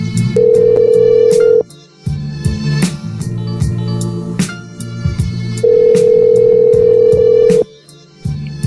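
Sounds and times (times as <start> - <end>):
busy music: 0.0 - 8.6
outgoing phone call ringback tone buzz: 0.4 - 1.6, 5.6 - 7.7.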